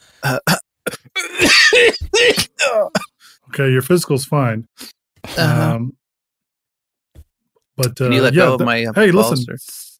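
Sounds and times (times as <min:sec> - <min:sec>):
person coughing on request during physical exam: 0:00.2 - 0:03.2
speech: 0:00.3 - 0:00.5, 0:03.6 - 0:06.0, 0:07.8 - 0:09.8.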